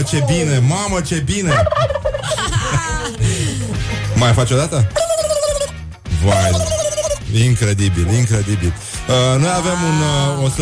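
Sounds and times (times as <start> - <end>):
speech: 0.0 - 3.4, 4.2 - 5.1, 6.2 - 10.6
laughter: 1.4 - 5.6
turkey gobbling: 1.5 - 2.4, 5.0 - 7.2.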